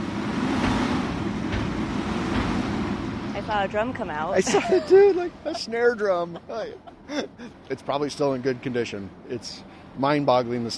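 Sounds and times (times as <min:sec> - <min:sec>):
garbage truck engines rumbling at Boone County Landfill in central Iowa: 0:00.0 - 0:10.7
speech: 0:03.5 - 0:10.7
laughter: 0:04.3 - 0:07.7.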